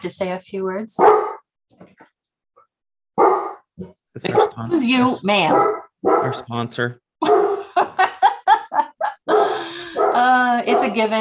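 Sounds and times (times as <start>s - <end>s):
speech: 0.0s - 2.0s, 3.8s - 7.4s, 10.2s - 11.1s
dog barking: 1.0s - 1.4s, 3.2s - 3.6s, 4.3s - 4.6s, 5.5s - 6.5s, 7.2s - 7.6s, 9.3s - 11.1s
laughter: 6.3s - 11.0s.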